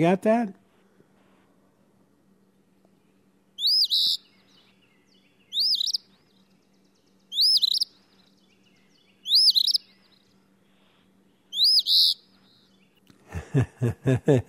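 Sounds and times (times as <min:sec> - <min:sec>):
speech: 0:00.0 - 0:00.6, 0:03.9 - 0:04.2, 0:13.6 - 0:14.4
eastern phoebe singing raspy two-part phrases: 0:02.9 - 0:10.6, 0:11.2 - 0:13.1
laughter: 0:13.2 - 0:14.4.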